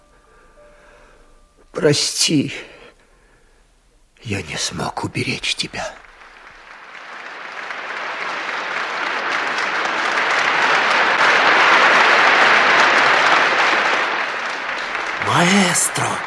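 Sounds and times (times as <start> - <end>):
speech: 1.8 - 2.8, 4.2 - 6.0, 15.3 - 16.2
large audience applauding: 5.2 - 16.2.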